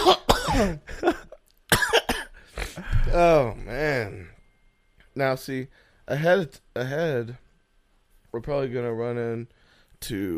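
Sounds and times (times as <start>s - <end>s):
speech: 0.0s - 1.1s, 3.1s - 4.2s, 5.2s - 7.4s, 8.3s - 10.3s
loud harsh coughs against the microphone: 0.0s - 3.0s.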